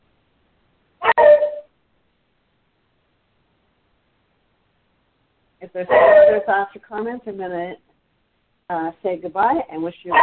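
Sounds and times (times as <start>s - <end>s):
small female dog barking at the neighbors: 1.0s - 1.6s, 5.9s - 6.5s
speech: 5.6s - 7.8s, 8.7s - 10.2s.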